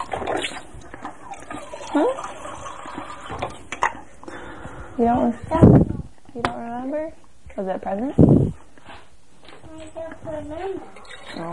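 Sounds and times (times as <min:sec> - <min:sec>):
fresh water poured into small paint water container: 0:00.0 - 0:03.6
speech: 0:02.0 - 0:02.3, 0:05.0 - 0:05.8, 0:06.4 - 0:08.6, 0:10.2 - 0:11.5.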